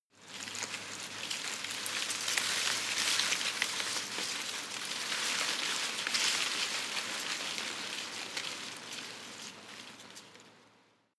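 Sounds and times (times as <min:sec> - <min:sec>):
small tree leaves rustling softly in a garden: 0:00.2 - 0:11.1.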